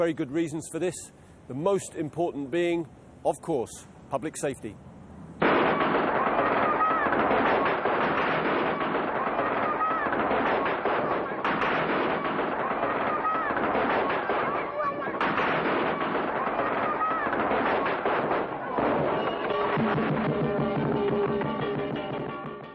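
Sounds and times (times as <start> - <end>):
speech: 0.0 - 4.9
strings of firecrackers and fireworks exploding: 5.4 - 22.7.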